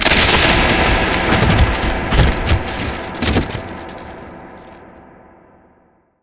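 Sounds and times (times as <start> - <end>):
wood breaking: 0.0 - 4.8.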